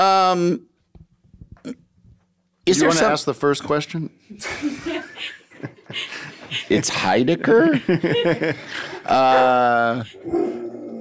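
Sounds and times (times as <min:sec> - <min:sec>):
speech: 0:00.0 - 0:00.7, 0:02.7 - 0:10.6
laughter: 0:04.4 - 0:10.3
dog barking and growling: 0:09.1 - 0:10.9.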